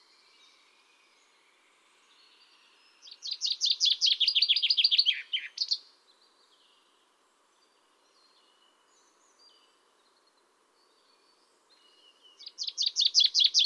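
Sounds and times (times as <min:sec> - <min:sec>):
common chaffinch Fringilla coelebs trilling song: 0:03.0 - 0:05.8, 0:12.1 - 0:13.6.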